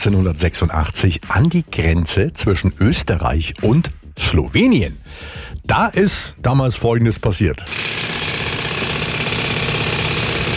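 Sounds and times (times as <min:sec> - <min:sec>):
speech: 0:00.0 - 0:08.0
jackhammer hammering and drilling for the Karawanken Tunnel: 0:07.6 - 0:10.5.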